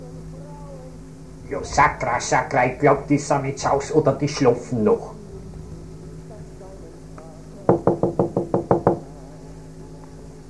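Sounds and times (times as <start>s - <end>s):
faint low hum: 0.0s - 10.4s
speech: 1.5s - 5.2s
knocking on a door: 7.7s - 9.1s.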